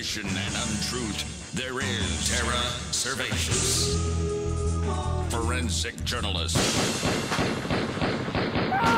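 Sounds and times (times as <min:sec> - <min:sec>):
speech: 0:00.0 - 0:07.8
automatic gunfire sound effect: 0:06.8 - 0:08.8.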